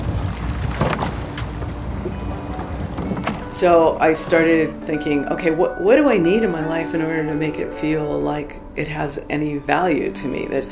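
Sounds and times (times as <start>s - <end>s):
oar strokes of a small rowing boat splashing on open water: 0.0s - 3.6s
water lapping: 0.0s - 4.9s
steady low rumble of wind: 0.0s - 9.8s
speech: 3.6s - 10.6s.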